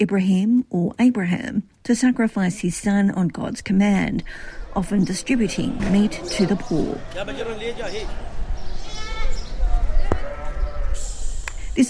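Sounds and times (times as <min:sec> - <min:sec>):
speech: 0:00.0 - 0:08.3
crowd chatter at a busy livestock market in Baghdad Iraq: 0:03.9 - 0:11.4
sheep bleating at a livestock market in Baghdad Iraq: 0:08.9 - 0:11.0.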